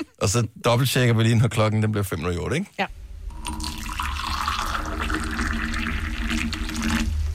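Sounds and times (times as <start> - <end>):
speech: 0.2 - 3.0
hot water poured into a cup: 3.3 - 7.3.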